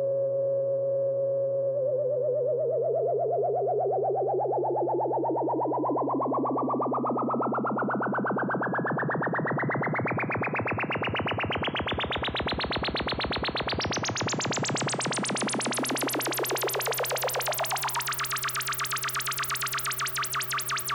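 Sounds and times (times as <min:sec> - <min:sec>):
Roland SH 2000 synthesizer UFO sound: 0:00.2 - 0:20.9.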